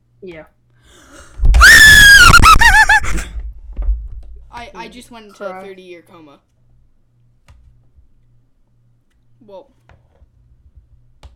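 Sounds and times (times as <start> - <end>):
speech: 0.2 - 1.9, 4.6 - 6.5, 9.4 - 9.9
person shrieking in short warbling shrieks: 1.1 - 3.3
person screaming as loud as possible: 1.2 - 3.3.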